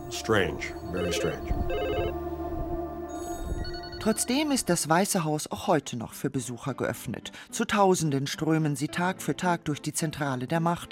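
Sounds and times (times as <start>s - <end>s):
speech: 0.1s - 2.4s, 3.5s - 10.8s
telephone ringing with a warbling electronic trill: 0.8s - 2.2s.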